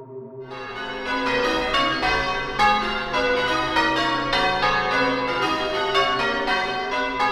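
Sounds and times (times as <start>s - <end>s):
church bells ringing in the town of Piran on the Adriatic: 0.5s - 7.2s.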